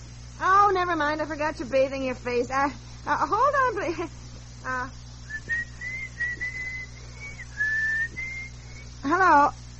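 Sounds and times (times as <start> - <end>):
steady low hum: 0.0 - 9.7
speech: 0.4 - 5.0, 9.0 - 9.6
person whistling a short wavering tune into a telephone: 5.3 - 8.9.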